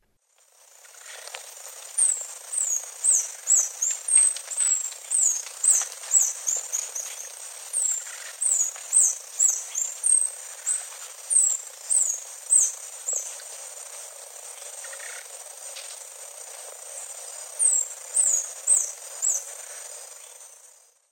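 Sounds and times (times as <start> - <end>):
Reddish Hermit in the Eastern Lowlands of South America: 0.7 - 20.6.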